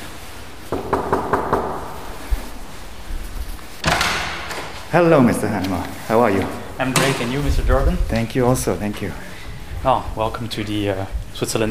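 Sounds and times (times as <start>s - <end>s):
quick firm knocks on an office door in Courroux, Jura, Switzerland: 0.7s - 1.9s
office door being opened: 3.8s - 4.8s, 6.4s - 7.6s
speech: 4.9s - 11.6s.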